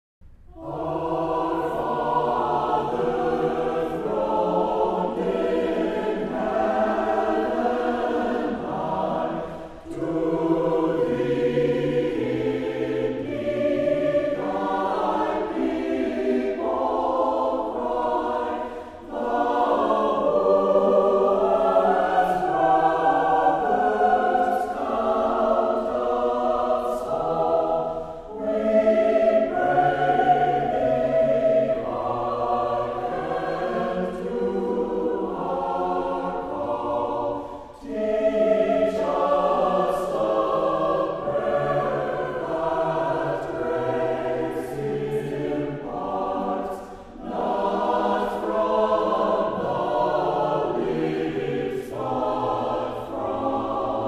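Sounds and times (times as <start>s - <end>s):
choir singing: 0.5s - 54.0s.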